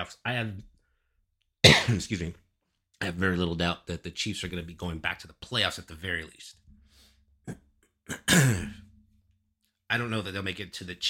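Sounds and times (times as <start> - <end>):
speech: 0.0 - 0.7, 1.6 - 2.4, 3.0 - 6.6, 7.4 - 8.8, 9.9 - 11.0
person coughing: 1.6 - 2.0, 7.5 - 8.9.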